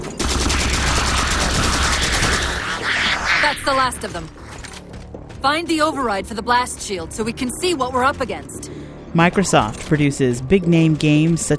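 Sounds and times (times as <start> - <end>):
rapid gunfire from a modern video game: 0.1 - 3.4
speech: 3.5 - 4.4, 5.4 - 11.5.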